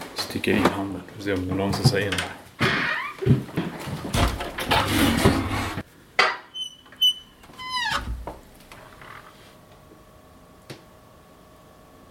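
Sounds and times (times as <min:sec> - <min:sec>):
speech: 0:00.4 - 0:02.4, 0:03.3 - 0:03.6
wardrobe door squeaking and creaking as it is opened: 0:02.6 - 0:05.8, 0:06.5 - 0:09.3
wardrobe door that will not open all the way knocking and rattling: 0:04.1 - 0:05.6.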